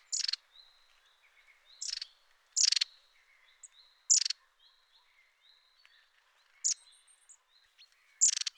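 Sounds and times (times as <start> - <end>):
long-tailed tit rattling calls and thin high notes: 0.1 - 0.4, 1.8 - 2.8, 8.2 - 8.5.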